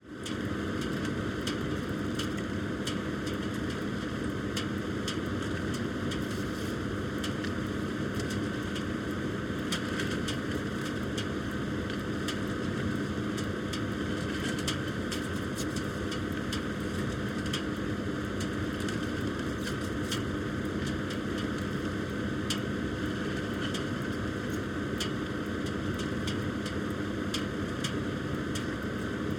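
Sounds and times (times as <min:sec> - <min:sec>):
ski lift station ambience: 0:00.1 - 0:29.3.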